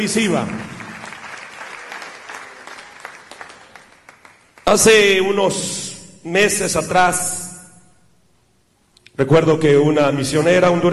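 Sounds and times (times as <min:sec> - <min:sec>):
speech: 0:00.0 - 0:00.8, 0:04.7 - 0:07.4, 0:09.2 - 0:10.9
large audience in a school auditorium clapping loudly: 0:00.0 - 0:05.0.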